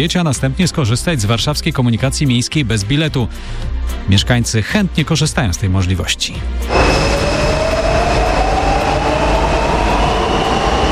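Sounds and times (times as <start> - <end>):
speech: 0.0 - 7.2
Warsaw metro train rumbling underground: 6.7 - 10.8
rising whine from metro train motors: 6.7 - 10.8.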